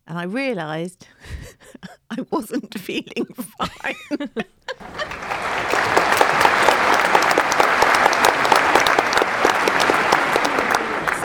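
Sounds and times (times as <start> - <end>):
speech: 0.1 - 6.1
laughter: 1.4 - 11.2
round of applause from many hands clapping: 4.8 - 11.2.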